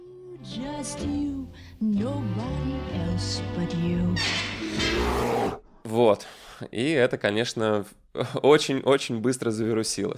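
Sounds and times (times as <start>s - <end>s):
speech: 0.6s - 10.1s
video game bear roaring and growling: 4.4s - 5.7s
harsh breathy snarl of a video game bear: 4.6s - 5.6s.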